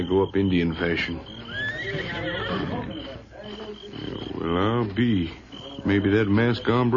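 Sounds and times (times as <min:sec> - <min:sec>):
faint horse hoof shuffling: 0:00.0 - 0:06.9
speech: 0:00.0 - 0:06.9
horse neighing: 0:01.2 - 0:04.6.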